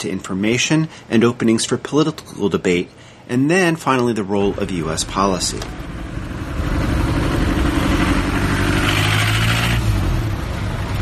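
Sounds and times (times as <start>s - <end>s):
speech: 0.0s - 5.9s
1950s car engine revving: 4.4s - 10.9s.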